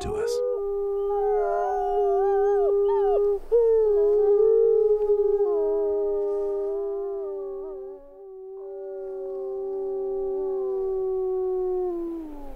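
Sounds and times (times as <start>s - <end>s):
Rocky Mountain wolves howling in Yellowstone National Park: 0.1s - 12.5s.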